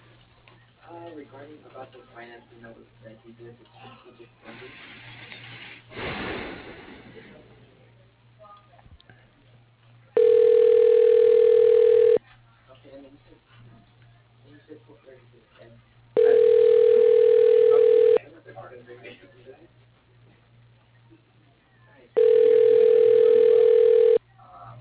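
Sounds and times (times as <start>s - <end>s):
telephone ringback tone while a call is transferred: 10.2s - 12.2s, 16.2s - 18.2s, 22.2s - 24.2s.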